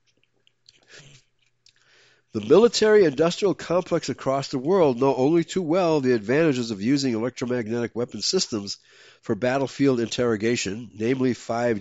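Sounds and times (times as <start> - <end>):
soft mouth clicks: 0.0 - 3.2
quick sip and swallow of a drink: 0.0 - 3.8
speech: 2.3 - 11.7.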